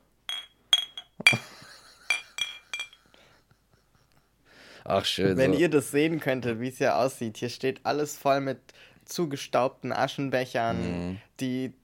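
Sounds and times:
beer glasses clinking in a toast: 0.3s - 3.0s
speech: 4.9s - 11.8s.

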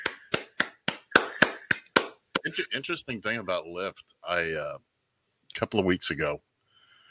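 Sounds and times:
sharp claps with short ringing tail: 0.0s - 2.5s
speech: 2.4s - 4.9s, 5.6s - 6.5s.

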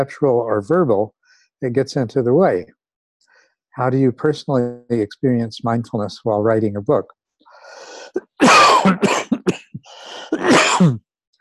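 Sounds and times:
speech: 0.0s - 2.8s, 3.8s - 11.0s
harsh rasping coughing fit: 8.1s - 11.0s.

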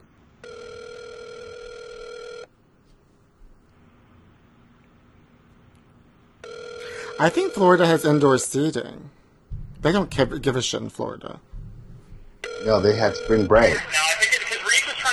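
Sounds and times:
electronic phone ringback tone on an outgoing call: 0.4s - 2.5s, 6.4s - 8.2s, 12.4s - 13.8s
speech: 7.2s - 9.2s, 9.8s - 11.5s, 12.6s - 14.0s.

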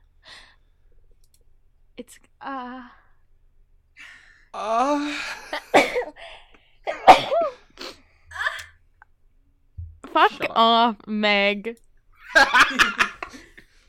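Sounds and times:
speech: 2.0s - 3.0s, 4.0s - 6.3s, 10.2s - 11.8s, 12.4s - 13.0s
person sneezing: 6.9s - 8.6s.

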